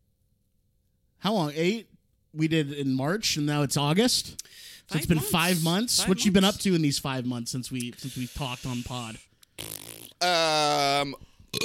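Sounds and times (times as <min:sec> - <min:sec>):
speech: 0:01.2 - 0:11.6
long loud deep resonant burp: 0:09.6 - 0:11.6.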